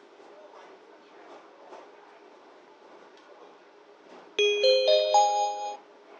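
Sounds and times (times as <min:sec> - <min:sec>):
four-note electronic tram door chime: 0:04.4 - 0:05.8.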